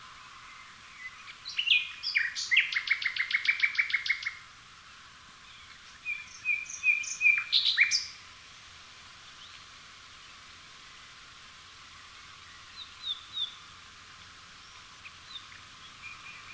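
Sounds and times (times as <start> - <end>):
common nightingale Luscinia megarhynchos singing: 0.0 - 4.5, 5.4 - 8.2, 12.4 - 13.8, 14.6 - 16.5.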